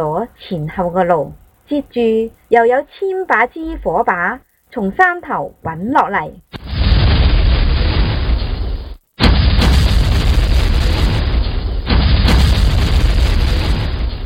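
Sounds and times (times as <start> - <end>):
speech: 0.0 - 6.5
explosions of carts loaded with fire cannons: 6.6 - 14.2.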